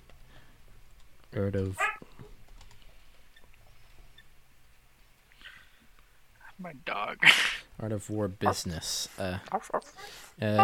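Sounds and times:
speech: 0:01.4 - 0:02.0, 0:06.6 - 0:10.6
typing on a computer keyboard: 0:02.5 - 0:02.8.

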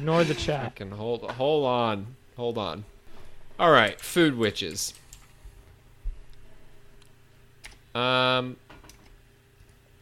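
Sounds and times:
speech: 0:00.0 - 0:03.0, 0:03.6 - 0:05.0, 0:08.0 - 0:08.6
soft quiet computer keyboard typing: 0:03.8 - 0:05.4, 0:08.9 - 0:10.0.

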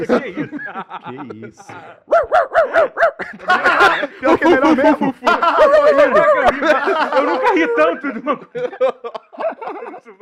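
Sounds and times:
laughter: 0:00.0 - 0:10.2
speech: 0:00.0 - 0:10.2
person imitating a dog barking: 0:01.9 - 0:03.2.

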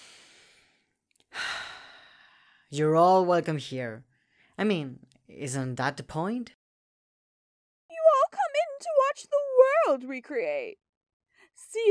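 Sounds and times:
slow airy breath: 0:00.0 - 0:02.7
speech: 0:02.7 - 0:06.6, 0:08.8 - 0:10.8, 0:11.6 - 0:11.8.

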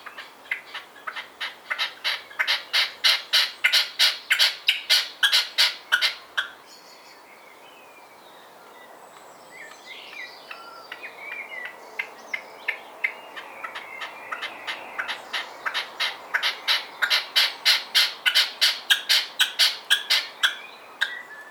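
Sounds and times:
red-legged partridge calling in a garden: 0:00.0 - 0:06.6, 0:10.9 - 0:21.5.

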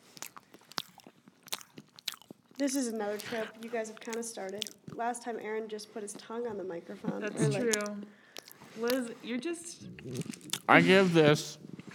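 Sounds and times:
person chewing a chocolate chunk cookie: 0:00.0 - 0:05.4, 0:07.2 - 0:10.9
speech: 0:02.6 - 0:08.2, 0:08.8 - 0:11.9.

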